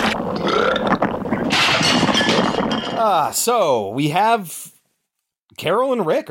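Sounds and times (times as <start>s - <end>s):
long deep gurgling monster burp: 0.2s - 3.0s
speech: 3.5s - 4.6s, 5.6s - 6.3s.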